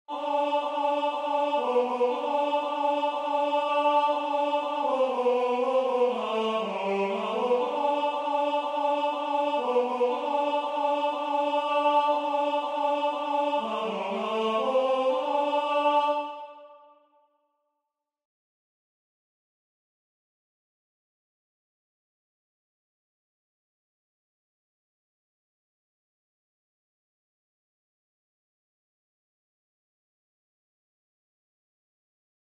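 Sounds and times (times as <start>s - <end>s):
tenor singing: 0.1s - 16.9s.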